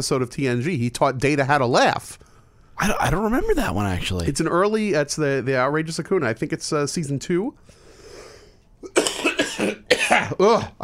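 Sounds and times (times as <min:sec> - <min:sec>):
speech: 0:00.0 - 0:07.8, 0:08.8 - 0:09.0, 0:09.6 - 0:10.8
single sharp cough: 0:08.8 - 0:10.8.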